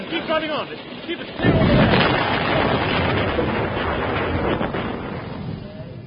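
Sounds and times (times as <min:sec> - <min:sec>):
speech: 0:00.3 - 0:02.5
landmine explosion in a minefield: 0:01.3 - 0:06.0.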